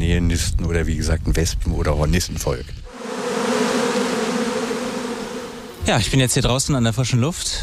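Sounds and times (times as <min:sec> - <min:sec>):
speech: 0:00.1 - 0:03.0, 0:05.9 - 0:07.6
honeybees buzzing in front of their hive: 0:02.9 - 0:06.0.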